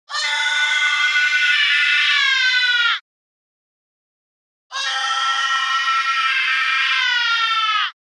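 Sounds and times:
monster screams: 0.1s - 3.0s, 4.7s - 8.0s.

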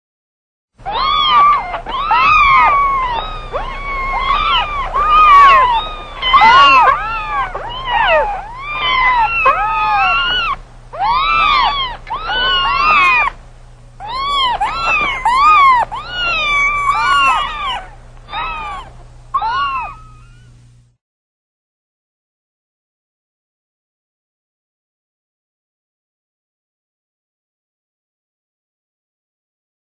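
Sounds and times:
kittens meowing: 0.8s - 13.4s, 14.0s - 20.6s.

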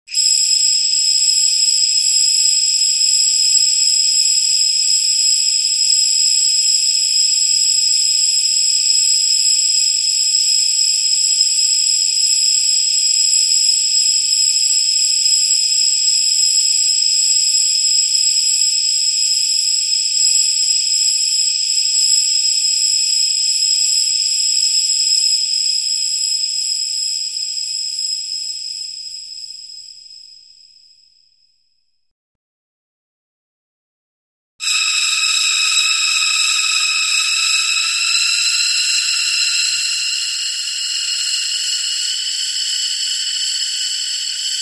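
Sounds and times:
air escaping: 34.6s - 44.5s.

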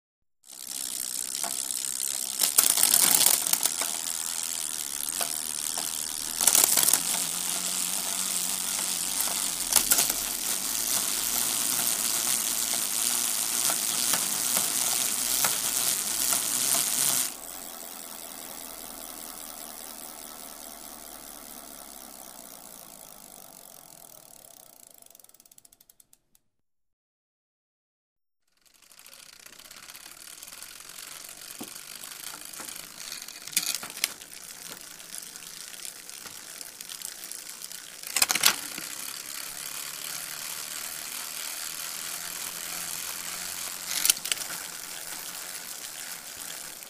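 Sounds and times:
bicycle riding: 0.4s - 26.1s, 28.6s - 46.8s.

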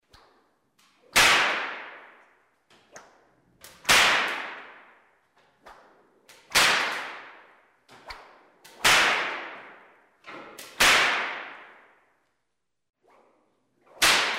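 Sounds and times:
whip crack: 0.1s - 12.0s, 13.0s - 14.3s.

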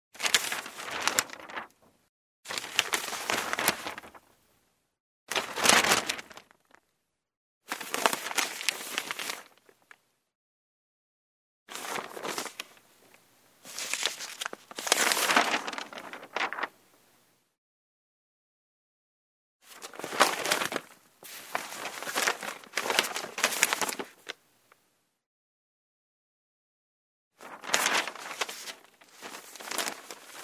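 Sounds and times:
newspaper pages rustling: 0.2s - 1.9s, 2.5s - 4.2s, 5.3s - 6.8s, 7.7s - 10.0s, 11.7s - 12.9s, 13.6s - 16.8s, 19.7s - 24.4s, 27.4s - 30.4s.

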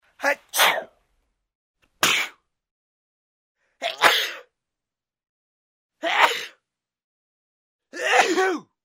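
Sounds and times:
man sneezing: 0.5s - 0.9s, 2.0s - 2.4s, 3.8s - 4.5s, 6.0s - 6.6s, 8.0s - 8.7s.

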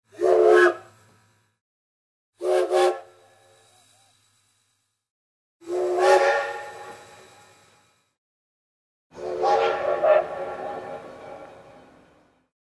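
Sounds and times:
steam locomotive whistle: 0.1s - 1.0s, 2.4s - 4.1s, 5.6s - 8.0s, 9.1s - 12.4s.

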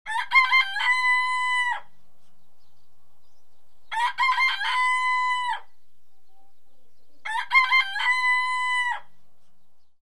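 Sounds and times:
rooster crowing: 0.1s - 1.9s, 3.9s - 5.7s, 7.2s - 9.1s.

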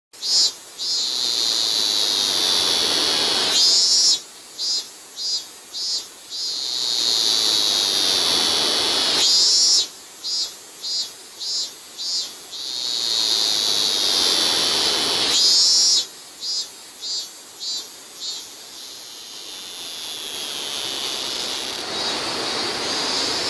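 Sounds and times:
cicada in Japan: 0.1s - 23.4s.

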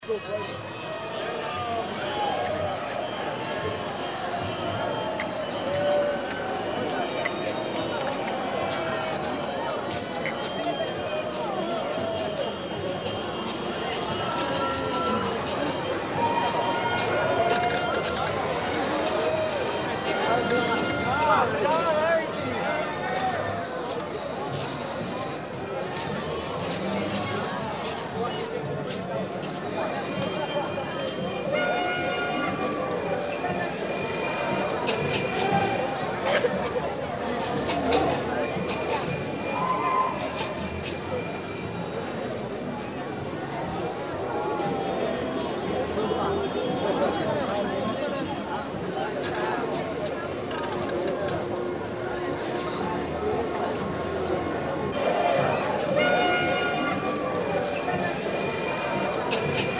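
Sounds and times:
street noise on New Year's night: 0.0s - 59.7s.

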